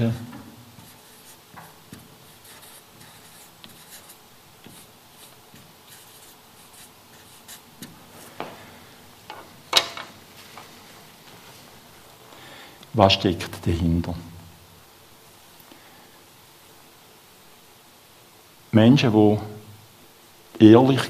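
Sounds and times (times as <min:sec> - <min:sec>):
speech: 0:00.0 - 0:00.2, 0:13.0 - 0:14.3, 0:18.8 - 0:19.5, 0:20.6 - 0:21.0
writing words on a board: 0:00.8 - 0:08.5.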